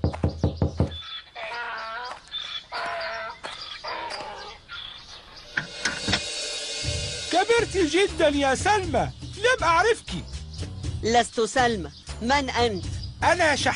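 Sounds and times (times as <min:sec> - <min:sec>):
firm knocks on a door: 0:00.0 - 0:01.0
bird-like clucking and chirping calls: 0:00.8 - 0:06.1
speech: 0:07.6 - 0:10.3, 0:11.0 - 0:13.7.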